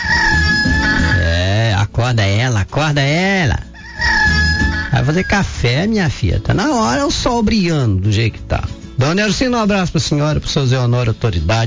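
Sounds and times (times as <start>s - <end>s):
rooster crowing: 0.0s - 1.4s, 3.8s - 5.6s
speech: 2.1s - 4.2s, 5.0s - 11.6s.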